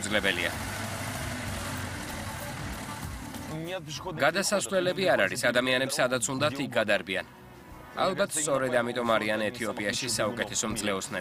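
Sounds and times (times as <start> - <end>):
speech: 0.0 - 0.8, 3.5 - 7.4, 8.0 - 11.1
street traffic in Ethiopia with noisy car engines: 0.0 - 3.7.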